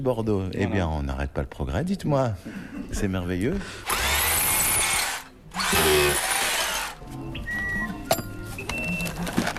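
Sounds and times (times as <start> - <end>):
speech: 0.0 - 4.1
power screwdriver whirring: 3.8 - 7.0
thin whistling tones: 7.2 - 9.1.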